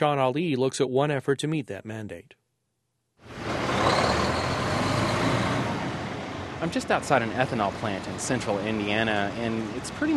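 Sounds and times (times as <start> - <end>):
speech: 0.0 - 2.4, 6.6 - 10.1
semi-trucks driving past: 3.2 - 10.1.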